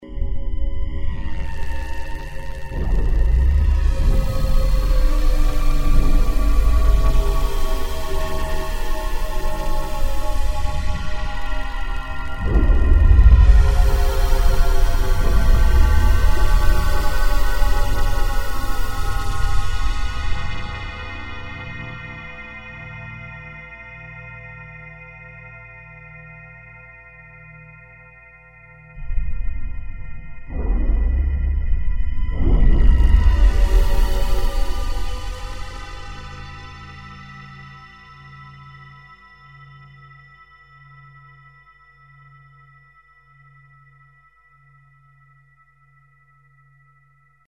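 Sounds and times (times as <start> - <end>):
ambient texture on a Yamaha SY99 synth: 0.0 - 24.7, 28.8 - 38.8.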